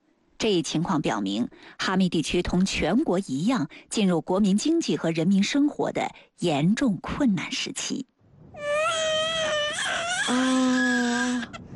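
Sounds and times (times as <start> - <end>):
speech: 0.4 - 8.1, 10.3 - 11.7
little girl crying: 8.6 - 11.6.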